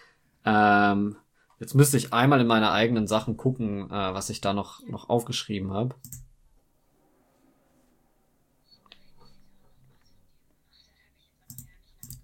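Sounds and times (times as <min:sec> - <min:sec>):
speech: 0:00.5 - 0:06.2
computer mouse clicks: 0:06.0 - 0:06.3, 0:11.5 - 0:12.2.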